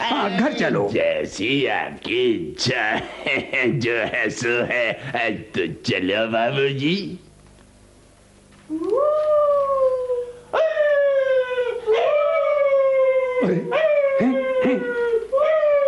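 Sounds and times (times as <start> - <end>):
speech: 0.2 - 7.2, 8.7 - 9.4
dogs howling in long wavering cries: 8.8 - 15.8.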